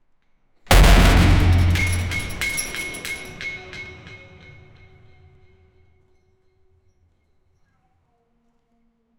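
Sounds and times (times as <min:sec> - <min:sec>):
echoing car crash: 0:00.7 - 0:04.9.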